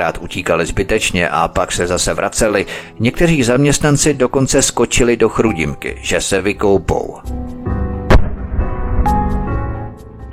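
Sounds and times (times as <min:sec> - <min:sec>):
speech: 0:00.0 - 0:07.4
bomb explosions during an air raid: 0:08.0 - 0:09.7.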